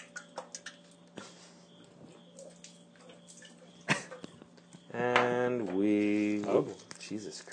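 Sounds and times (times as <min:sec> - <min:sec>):
gasoline trickling and splashing as it is poured: 0:00.0 - 0:01.2, 0:02.3 - 0:04.4
low steady hum: 0:00.0 - 0:07.5
speech: 0:05.0 - 0:07.5.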